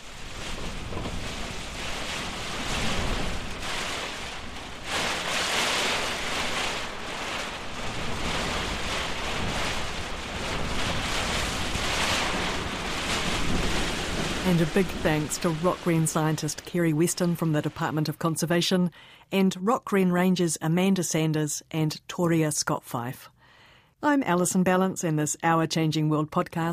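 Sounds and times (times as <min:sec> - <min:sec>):
heavy storm wind in gusts: 0:00.0 - 0:15.9
heavy storm rain: 0:00.0 - 0:18.3
speech: 0:14.6 - 0:23.3, 0:24.0 - 0:26.7.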